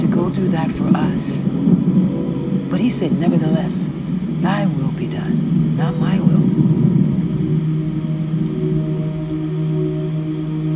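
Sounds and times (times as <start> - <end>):
deep continuous rumble of thunderstorm: 0.0 - 10.7
heavy rain pouring: 0.0 - 10.7
speech: 0.3 - 6.1.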